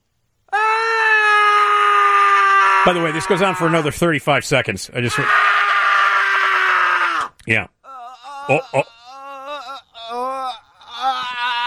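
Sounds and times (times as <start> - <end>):
group of men screaming: 0.6 - 3.9, 5.1 - 7.3, 10.8 - 11.6
speech: 2.8 - 5.5, 7.5 - 7.8, 8.5 - 8.9.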